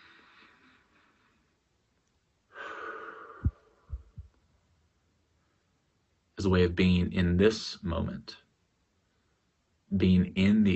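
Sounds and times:
slow deliberate breathing: 0:00.0 - 0:01.6, 0:02.5 - 0:04.3
low soft thumps: 0:03.4 - 0:04.4
speech: 0:06.4 - 0:08.4, 0:09.9 - 0:10.7.

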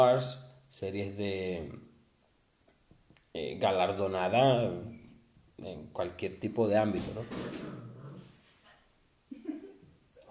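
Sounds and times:
speech: 0:00.0 - 0:01.9, 0:03.4 - 0:05.0, 0:05.6 - 0:07.9
dog whining yelp: 0:09.3 - 0:10.2.

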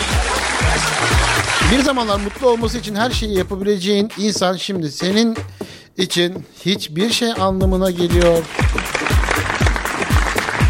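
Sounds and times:
loud sustained applause: 0:00.0 - 0:02.9, 0:08.1 - 0:10.6
speech: 0:01.7 - 0:09.2.

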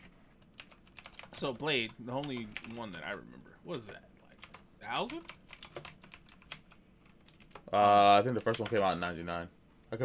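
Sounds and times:
clicky keystrokes on a computer keyboard: 0:00.4 - 0:03.2, 0:04.3 - 0:07.7, 0:08.3 - 0:08.9
speech: 0:01.4 - 0:04.1, 0:04.8 - 0:05.4, 0:07.7 - 0:10.0.

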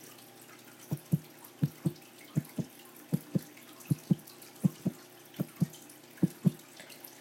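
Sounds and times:
Foley heartbeat made by pulling a taut t-shirt: 0:00.9 - 0:06.6.

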